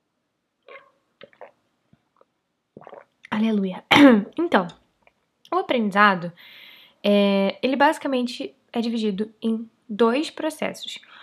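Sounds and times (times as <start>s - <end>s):
person gulping and swallowing a sip of water: 0.7s - 1.6s, 2.8s - 4.4s
speech: 3.4s - 4.8s, 5.7s - 11.2s.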